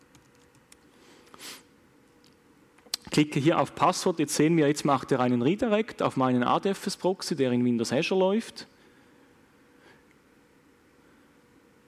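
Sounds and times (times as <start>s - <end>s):
computer keyboard typing a username: 0.0s - 0.8s
speech: 3.2s - 8.7s.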